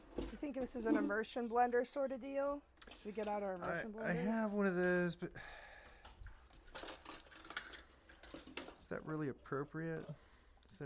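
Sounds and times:
speech: 0:00.4 - 0:05.6, 0:08.9 - 0:10.8
kitchen utensils clinking and rattling in a drawer: 0:06.4 - 0:09.0.

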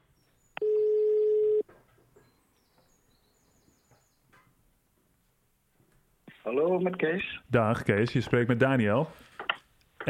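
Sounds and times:
telephone ringback tone while a call is being placed: 0:00.6 - 0:01.6
speech: 0:06.5 - 0:09.3.

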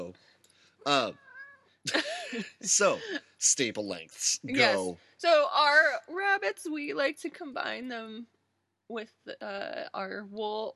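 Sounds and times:
speech: 0:00.0 - 0:01.2, 0:01.8 - 0:10.7
female cat meowing angrily at an empty food bowl: 0:00.9 - 0:01.7
laughter: 0:01.9 - 0:03.2.

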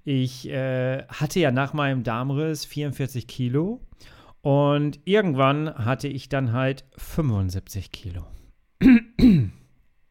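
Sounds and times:
speech: 0:00.0 - 0:09.6
throat clearing and coughing: 0:08.8 - 0:09.7.

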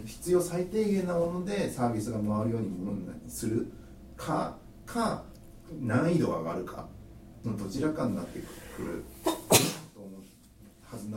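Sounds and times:
speech: 0:00.1 - 0:10.2, 0:10.9 - 0:11.1
sneeze: 0:09.2 - 0:10.0.

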